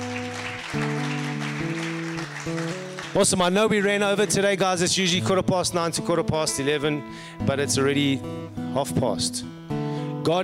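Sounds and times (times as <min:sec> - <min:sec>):
crowd clapping: 0:00.0 - 0:05.2
speech: 0:03.1 - 0:09.6, 0:10.2 - 0:10.4.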